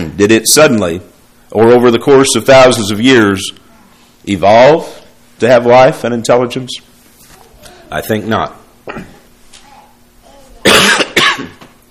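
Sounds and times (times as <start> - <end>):
speech: 0.2 - 3.6, 4.2 - 6.9, 7.9 - 9.1
person with a sore throat coughing: 8.8 - 9.2, 10.6 - 11.6.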